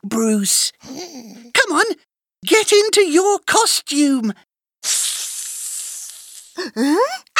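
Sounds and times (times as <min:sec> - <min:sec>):
speech: 0:00.1 - 0:05.1, 0:06.6 - 0:07.3
snake hissing: 0:04.8 - 0:06.6.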